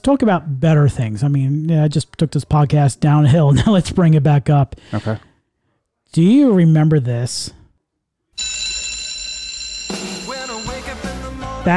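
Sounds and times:
speech: 0.0 - 5.3, 6.1 - 7.6
loud steady electric bell ringing: 8.4 - 11.7
bright upbeat TV sitcom theme tune: 9.8 - 11.7
sung vocal line over the music: 10.2 - 11.7.

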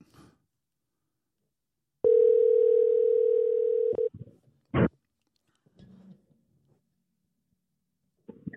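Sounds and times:
phone line ringing tone on an outgoing call: 2.0 - 4.1.

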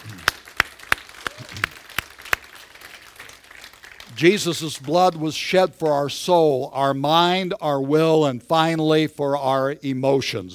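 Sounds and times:
audience rhythmic clapping: 0.0 - 6.0
speech: 4.2 - 10.5.

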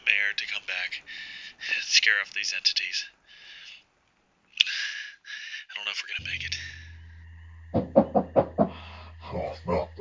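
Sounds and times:
faint steady hum: 0.0 - 9.9
speech: 0.1 - 3.2, 5.7 - 6.7
knocks on a bunker door: 7.7 - 8.7.

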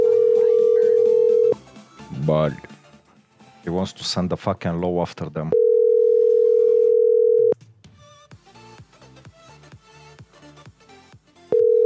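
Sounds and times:
telephone dial tone of a call to law enforcement: 0.0 - 1.6, 5.5 - 7.6, 11.5 - 11.8
speech: 2.3 - 2.7, 3.6 - 5.6.

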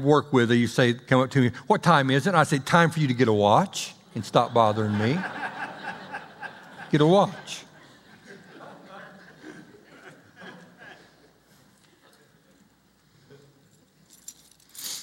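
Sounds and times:
speech: 0.0 - 5.4, 6.9 - 7.7
faint chuckling: 5.0 - 12.4
car keys jangling: 13.5 - 15.0.

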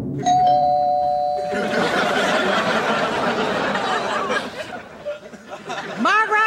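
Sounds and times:
electronic ding-dong doorbell chiming: 0.2 - 2.6
several people chattering and laughing: 1.5 - 6.4.

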